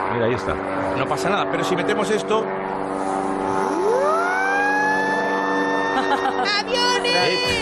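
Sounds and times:
light aircraft engine droning: 0:00.0 - 0:07.5
speech: 0:00.2 - 0:03.5, 0:06.2 - 0:07.5
small siren whistle blown: 0:03.6 - 0:06.2
laughter: 0:05.7 - 0:07.5.

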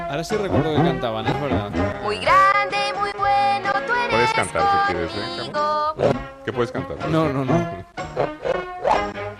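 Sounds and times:
speech: 0:00.1 - 0:08.4
dog barking: 0:08.1 - 0:09.1.

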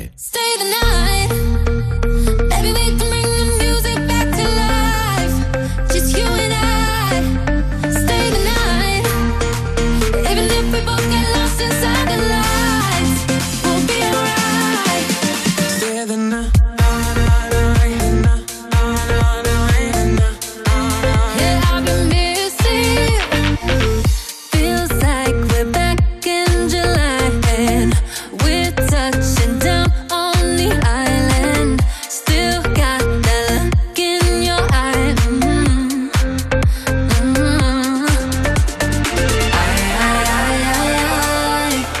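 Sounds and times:
upbeat dance-pop song with bright synths and pumping bassline: 0:00.0 - 0:41.9.

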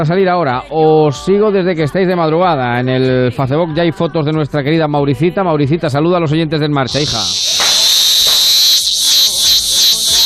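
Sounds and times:
speech: 0:00.0 - 0:07.5
cicada buzzing: 0:06.9 - 0:10.2.

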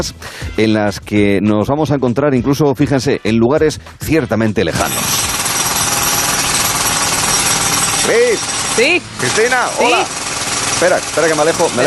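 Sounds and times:
speech: 0:00.0 - 0:05.3, 0:08.1 - 0:10.2, 0:10.8 - 0:11.8
jackhammer pounding: 0:04.8 - 0:11.8.

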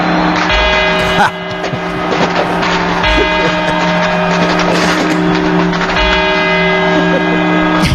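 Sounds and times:
clock tower bells chiming the quarter hour: 0:00.0 - 0:07.9
laughter: 0:00.9 - 0:07.8
speech: 0:01.2 - 0:01.4.

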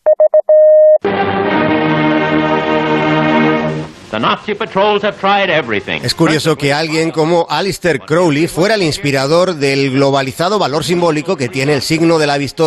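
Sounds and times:
electronic beeps of the Morse letter V: 0:00.0 - 0:01.0
sustained musical chord: 0:01.0 - 0:04.1
speech: 0:04.1 - 0:12.6.

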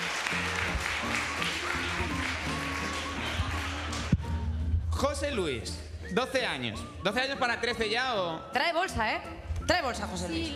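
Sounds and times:
large audience applause: 0:00.0 - 0:04.2
speech: 0:05.0 - 0:10.5.

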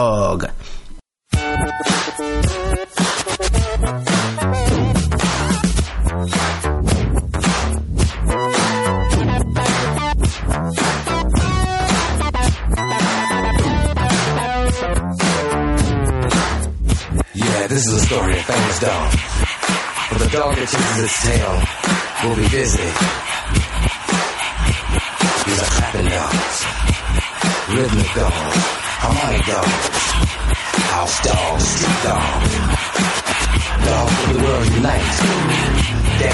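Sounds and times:
speech: 0:00.0 - 0:00.8, 0:17.8 - 0:19.3, 0:20.2 - 0:23.4, 0:27.7 - 0:36.3
prominent funk bassline: 0:01.3 - 0:17.3, 0:17.9 - 0:36.3
punchy funk drums: 0:01.4 - 0:36.3.

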